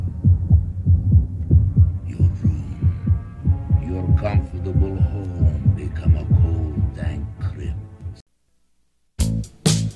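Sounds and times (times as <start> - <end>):
heart thudding: 0.0 - 7.0
speech: 4.2 - 7.9.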